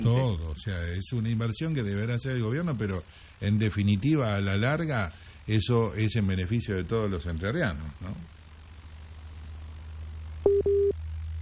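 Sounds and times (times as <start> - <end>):
speech: 0.0 - 8.4
low constant hum: 0.0 - 11.4
telephone line tone beeps on a dropped call: 10.5 - 10.9.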